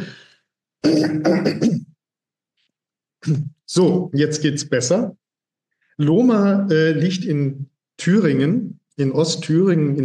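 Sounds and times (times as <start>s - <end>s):
speech: 0.0s - 0.2s, 0.8s - 1.8s, 3.2s - 5.2s, 6.0s - 10.0s
drawn-out throat clearing with rough pulses: 0.8s - 2.0s.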